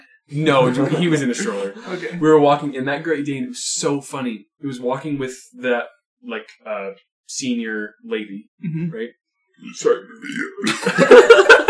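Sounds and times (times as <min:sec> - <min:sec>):
speech: 0:00.3 - 0:11.6
burst of chuckling laughter: 0:00.5 - 0:02.2, 0:09.8 - 0:11.6
drawn-out croaky burp: 0:08.6 - 0:10.9.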